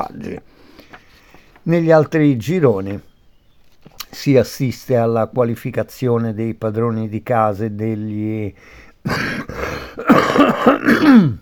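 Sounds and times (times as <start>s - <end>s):
speech: 0.0s - 0.8s, 1.6s - 3.1s, 4.1s - 9.4s, 10.0s - 11.4s
person coughing: 9.1s - 11.4s.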